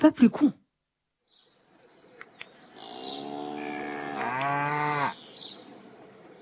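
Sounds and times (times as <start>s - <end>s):
faint outdoor ambience: 0.0s - 6.3s
cow mooing: 2.8s - 5.2s.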